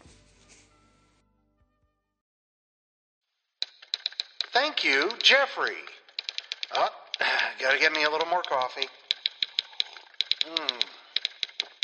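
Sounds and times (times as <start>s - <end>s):
typewriter keys clacking: 3.6s - 11.8s
speech: 4.6s - 6.0s, 6.7s - 9.0s, 10.4s - 10.9s.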